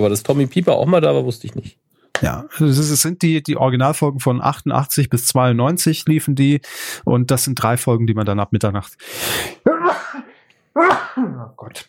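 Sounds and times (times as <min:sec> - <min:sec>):
speech: 0:00.0 - 0:11.8
person sneezing: 0:09.2 - 0:11.5
person muttering an exclamation: 0:09.7 - 0:11.6.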